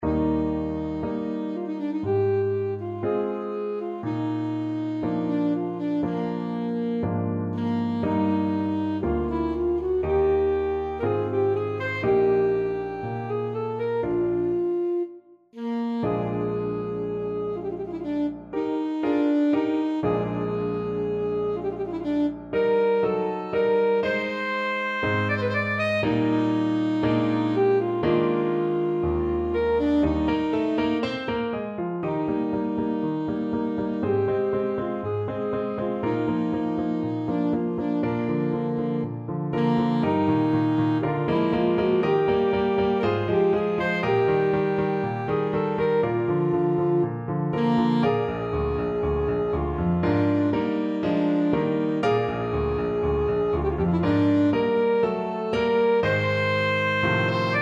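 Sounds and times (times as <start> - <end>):
saxophone playing a classical romance: 0.0 - 57.6.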